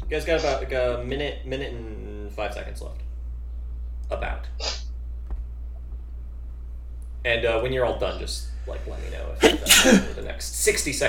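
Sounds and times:
speech: 0.1 - 3.1, 4.1 - 4.8, 7.2 - 11.0
sneeze: 9.4 - 10.2.

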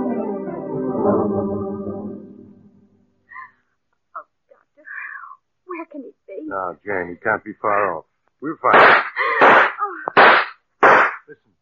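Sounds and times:
speech: 6.6 - 9.1
gunshots fired outdoors in the dark: 8.7 - 11.3.

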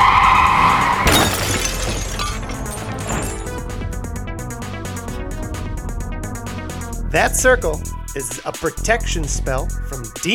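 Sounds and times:
car tires screeching in a hard skid: 0.0 - 3.7
car crash impact: 0.0 - 3.9
glass shattering: 1.0 - 3.7
debris rattling: 1.0 - 3.9
speech: 7.2 - 10.3.

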